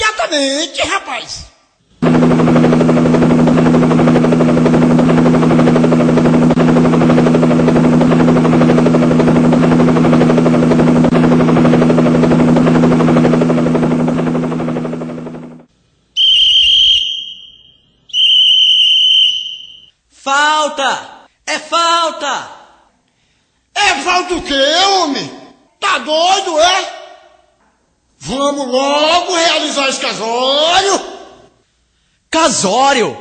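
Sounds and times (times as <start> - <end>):
speech: 0.3 - 3.2, 21.7 - 22.6, 24.0 - 27.0, 28.2 - 31.2, 32.3 - 33.1
helicopter rotor droning: 1.9 - 15.7
short shrill whistling tones: 16.2 - 20.0.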